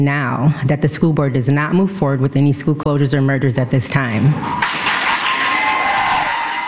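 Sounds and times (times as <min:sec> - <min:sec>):
speech: 0:00.0 - 0:04.8
roomful of people at a meeting clapping and cheering: 0:04.4 - 0:06.6.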